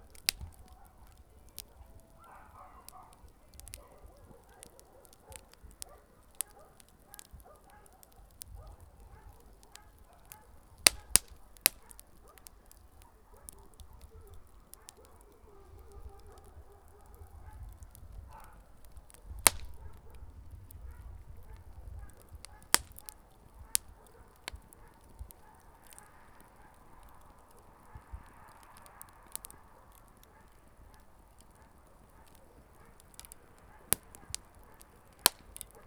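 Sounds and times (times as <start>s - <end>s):
small outdoor wood barbecue fire crackling: 0.0s - 35.8s.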